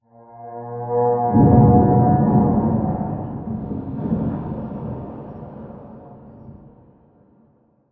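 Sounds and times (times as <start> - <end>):
distant explosion rumble tail heard from an interior: 1.3 - 7.4.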